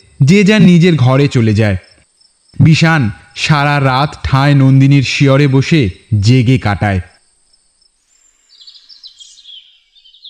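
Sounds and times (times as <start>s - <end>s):
speech: 0.2s - 1.9s, 2.6s - 7.1s
cuckoo calling outside a window in the morning: 8.1s - 10.2s.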